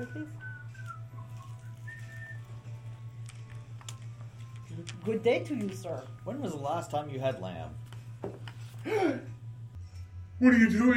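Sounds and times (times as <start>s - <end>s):
speech: 0.0s - 0.5s, 4.8s - 9.3s, 10.4s - 10.9s
balding old man whistling a soft wandering tune: 0.0s - 2.8s.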